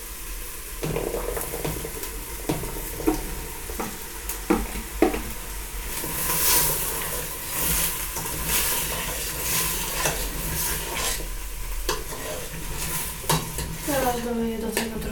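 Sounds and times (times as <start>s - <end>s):
bell peppers and onion frying in a pan: 0.0s - 15.0s
utensil stirring and clinking against a pan: 5.9s - 15.0s.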